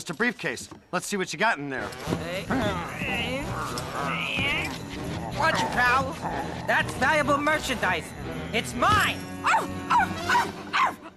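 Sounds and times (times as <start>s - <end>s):
speech: 0.0s - 10.6s
reindeer barking: 2.5s - 7.2s, 9.4s - 11.1s.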